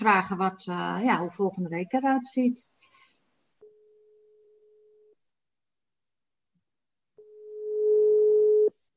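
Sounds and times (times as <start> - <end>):
speech: 0.0 - 2.7
telephone ringback tone while calling someone at home: 7.2 - 8.7.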